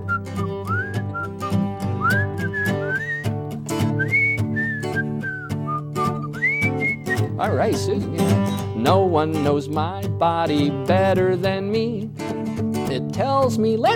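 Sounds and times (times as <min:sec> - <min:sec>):
group of people whistling a bouncy melody together: 0:00.0 - 0:03.4, 0:04.0 - 0:07.4
steady instrumental backing music: 0:00.0 - 0:13.9
speech: 0:07.4 - 0:12.3, 0:13.0 - 0:13.9.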